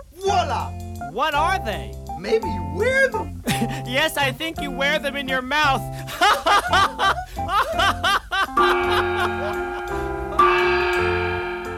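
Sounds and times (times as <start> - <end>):
speech: 0.5 - 9.7
person chuckling: 3.4 - 3.9, 6.0 - 10.6
clear bell strikes: 8.6 - 11.7.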